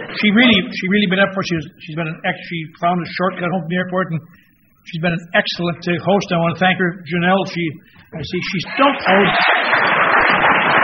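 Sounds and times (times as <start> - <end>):
speech: 0.2 - 9.9
audience applause: 8.6 - 10.8.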